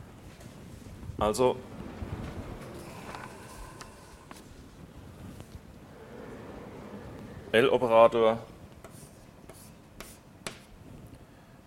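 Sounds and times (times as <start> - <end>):
speech: 1.2 - 1.7, 7.6 - 8.5
writing strokes scratching on a board during a lecture: 8.8 - 10.7.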